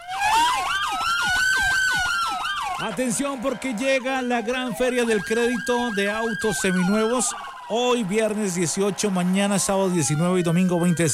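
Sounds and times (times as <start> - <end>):
wailing alarm siren sound effect in a used-car credit fair advertisement: 0.0 - 11.1
speech: 2.8 - 11.1.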